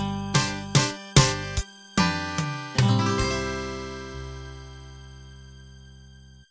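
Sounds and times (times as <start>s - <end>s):
8-bit standard ending jingle: 0.1s - 5.0s.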